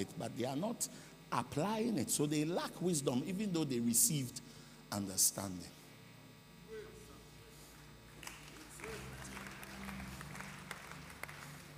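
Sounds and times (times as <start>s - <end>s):
speech: 0.0s - 5.8s
steady low electrical hum: 0.0s - 11.7s
scattered thin clapping from a small crowd in a reverberant room: 8.1s - 11.7s.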